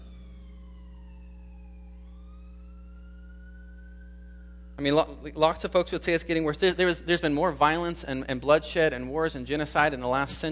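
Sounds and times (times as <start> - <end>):
ambulance siren wailing past outside: 0.0 - 5.6
steady low rumbling hum: 0.0 - 10.4
speech: 4.8 - 10.4.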